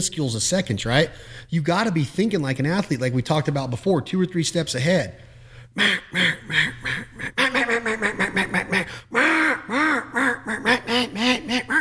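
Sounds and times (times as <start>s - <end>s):
speech: 0.0s - 8.2s
duck call blown in fine, coarse and raspy quacks: 5.8s - 11.8s.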